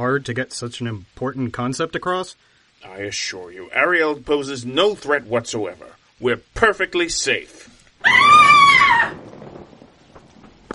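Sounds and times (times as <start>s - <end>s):
speech: 0.1s - 8.6s
woman screaming: 8.0s - 9.2s.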